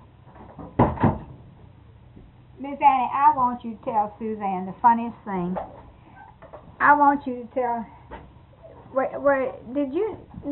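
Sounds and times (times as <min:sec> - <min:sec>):
door swinging shut with a double thump: 0:00.6 - 0:01.4
speech: 0:02.6 - 0:05.8, 0:06.8 - 0:08.0, 0:08.9 - 0:10.5.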